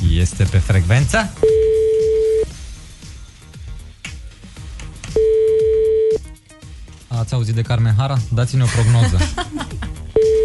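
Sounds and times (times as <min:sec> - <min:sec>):
music bed: 0:00.0 - 0:10.4
speech: 0:00.2 - 0:01.6, 0:07.2 - 0:10.0
telephone ringback tone of an unanswered outgoing call: 0:01.4 - 0:02.5, 0:05.2 - 0:06.2, 0:10.2 - 0:10.4
laughter: 0:08.6 - 0:10.0.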